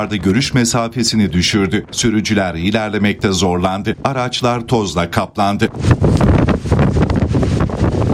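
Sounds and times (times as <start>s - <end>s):
speech: 0.0s - 7.5s
strong cold windstorm gusting through city streets and lifting dust: 0.0s - 8.1s.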